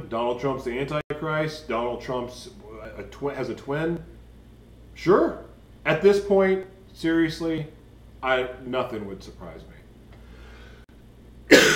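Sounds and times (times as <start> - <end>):
speech: 0.0 - 4.1, 5.0 - 9.7
low room noise: 0.0 - 11.7
single loud harsh cough: 11.5 - 11.7.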